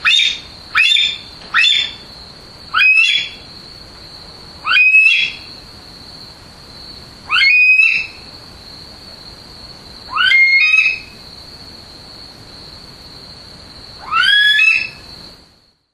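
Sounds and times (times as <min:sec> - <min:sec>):
Himalayan monal giving loud upward-sweeping whistled calls: 0:00.0 - 0:02.0, 0:02.7 - 0:03.4, 0:04.6 - 0:05.5, 0:07.3 - 0:08.2, 0:10.1 - 0:11.2, 0:14.0 - 0:15.1.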